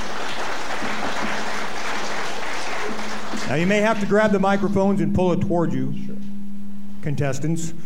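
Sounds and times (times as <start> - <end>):
audience applause: 0.0 - 4.6
speech: 3.5 - 6.1, 7.0 - 7.8.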